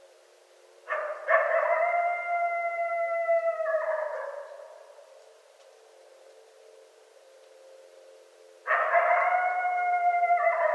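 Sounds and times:
coyote howling at night: 0.9 - 5.1, 8.7 - 10.7.

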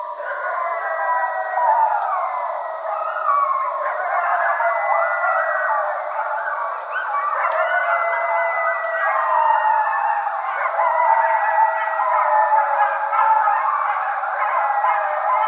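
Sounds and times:
coyotes howling together: 0.0 - 15.4.

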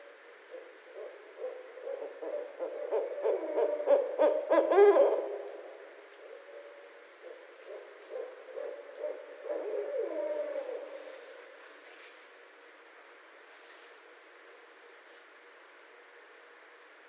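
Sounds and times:
barred owl giving cackling hooted notes and a descending wail: 0.0 - 11.5.

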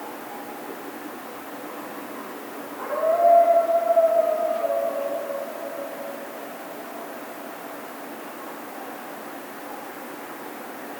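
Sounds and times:
coyote howling: 2.8 - 8.1.

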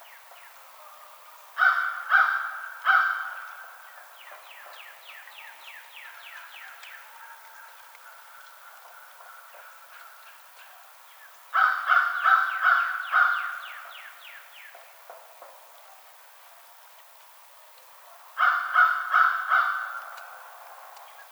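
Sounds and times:
American crow cawing: 1.6 - 3.6, 11.6 - 13.8, 18.4 - 20.5.

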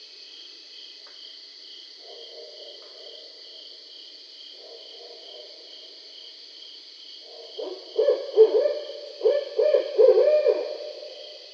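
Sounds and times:
barred owl hooting: 7.6 - 11.2.

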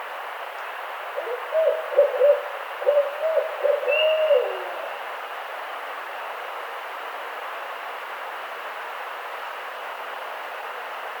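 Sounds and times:
barred owl hooting: 1.2 - 5.1.

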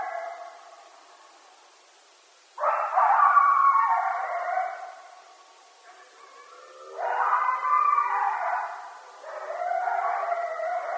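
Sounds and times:
group of several coyotes howling: 0.0 - 0.9, 2.6 - 5.3, 5.9 - 10.9.

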